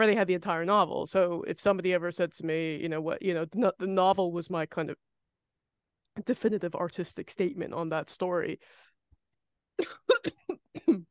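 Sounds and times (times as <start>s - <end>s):
speech: 0.0s - 5.1s, 6.2s - 8.9s, 9.8s - 11.0s
harsh coughs in a coughing fit: 9.8s - 11.0s.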